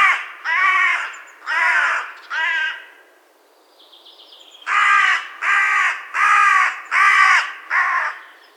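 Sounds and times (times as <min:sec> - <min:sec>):
carrion crow cawing: 0:00.0 - 0:03.0, 0:04.7 - 0:08.3.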